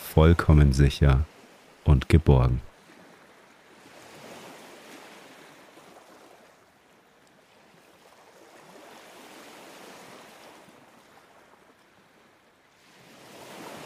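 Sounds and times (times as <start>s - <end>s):
ocean surf waves breaking and drawing back: 0.0s - 13.8s
speech: 0.2s - 2.7s.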